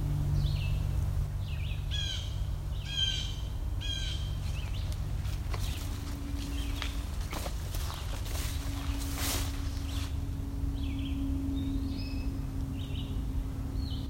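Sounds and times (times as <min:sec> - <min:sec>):
low steady hum: 0:00.0 - 0:14.0
blue jay giving an odd call in old-growth forest: 0:00.3 - 0:14.0.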